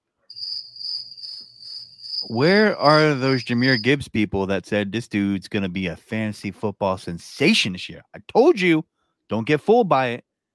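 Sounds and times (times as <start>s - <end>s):
crickets chirping: 0.3s - 4.0s
speech: 2.2s - 10.3s.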